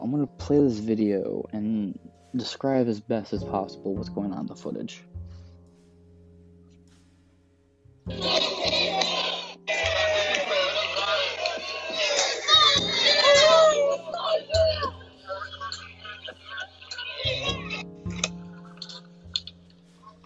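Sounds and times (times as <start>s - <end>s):
speech: 0.2s - 5.1s
large crowd yelling and shouting at a riot: 8.1s - 15.8s
laughter: 8.1s - 19.3s.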